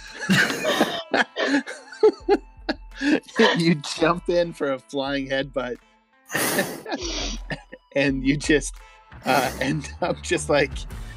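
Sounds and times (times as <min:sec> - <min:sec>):
laughter: 0:00.0 - 0:04.3, 0:06.3 - 0:07.9, 0:09.3 - 0:10.7
loud deliberate cough: 0:00.2 - 0:01.8, 0:03.0 - 0:03.7, 0:06.3 - 0:07.7
speech: 0:00.3 - 0:00.5, 0:03.4 - 0:11.1.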